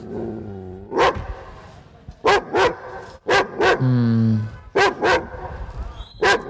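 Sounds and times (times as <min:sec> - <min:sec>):
large dog barking: 0:00.9 - 0:01.2, 0:02.2 - 0:03.8, 0:04.8 - 0:05.5, 0:06.2 - 0:06.4
speech: 0:03.8 - 0:04.2.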